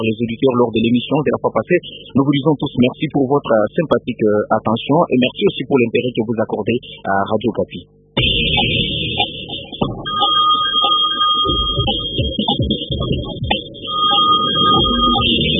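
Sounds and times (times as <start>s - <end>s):
speech: 0.0s - 8.8s
unanswered telephone ringing with a thin electronic tone: 10.1s - 12.8s, 13.8s - 15.5s.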